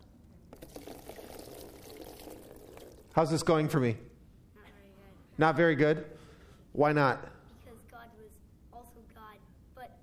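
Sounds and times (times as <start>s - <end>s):
liquid pouring into a container: 0.5s - 3.3s
speech: 3.2s - 4.1s, 5.4s - 6.2s, 6.8s - 7.4s.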